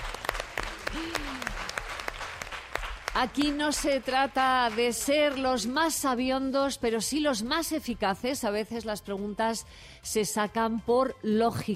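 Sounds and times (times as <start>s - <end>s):
audience applause: 0.0s - 5.4s
speech: 3.2s - 11.7s.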